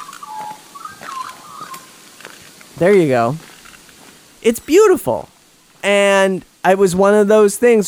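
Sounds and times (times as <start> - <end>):
black and white bird singing whistled notes: 0.0 - 1.9
speech: 2.8 - 3.5, 4.4 - 7.8.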